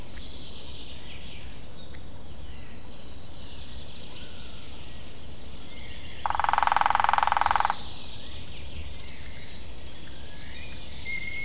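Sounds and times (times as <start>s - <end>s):
lesser spotted woodpecker drumming: 6.2s - 8.0s.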